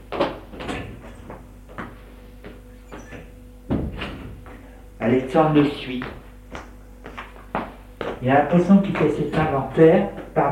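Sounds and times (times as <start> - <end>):
low steady hum: 0.0 - 10.5
several doors opening: 0.5 - 1.4, 2.6 - 6.2
speech: 5.0 - 6.2, 8.2 - 10.5.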